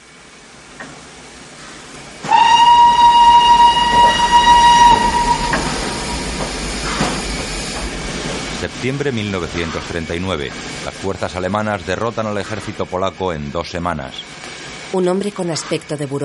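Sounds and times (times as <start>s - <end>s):
heavy rumble of a steam train stopping at a station: 0.0s - 16.2s
steam train hissing: 0.0s - 16.2s
steam locomotive whistle at a station: 2.2s - 7.1s
speech: 8.8s - 16.2s.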